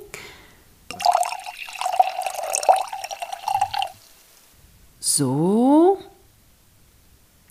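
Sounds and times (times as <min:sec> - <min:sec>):
wine pouring into a glass: 0:00.9 - 0:04.3
speech: 0:05.2 - 0:05.6.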